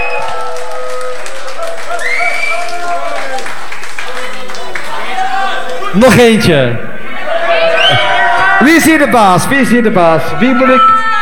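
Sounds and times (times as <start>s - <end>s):
loud audience applause: 0.0s - 6.4s
voices shouting and cheering: 0.0s - 11.1s
speech: 6.0s - 6.9s, 8.6s - 11.1s.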